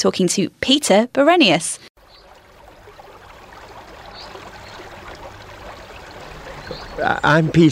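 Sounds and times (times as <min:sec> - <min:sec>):
speech: 0:00.0 - 0:01.9, 0:07.0 - 0:07.6
river stream water flowing with gentle babbling: 0:02.0 - 0:07.6.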